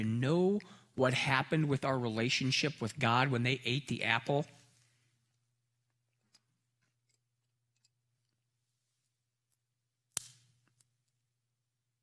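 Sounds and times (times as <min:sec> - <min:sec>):
speech: 0:00.0 - 0:04.6
pencil snapping in two: 0:10.2 - 0:10.4.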